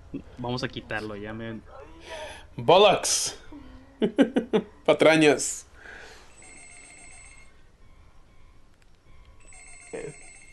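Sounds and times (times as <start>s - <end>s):
speech: 0.1s - 5.7s
laughter: 4.0s - 4.8s
telephone ringing electronically: 6.3s - 8.5s, 9.1s - 10.5s.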